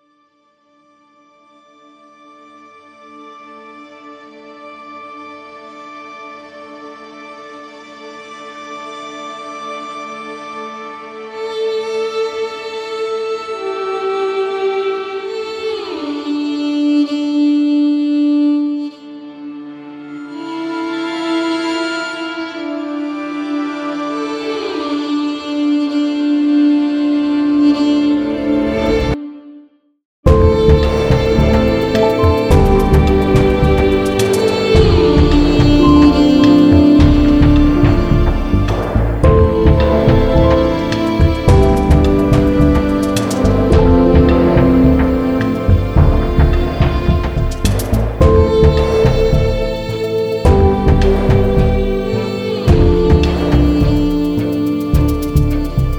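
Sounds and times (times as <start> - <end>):
violin sheer: 0.0 - 29.6, 30.3 - 55.9.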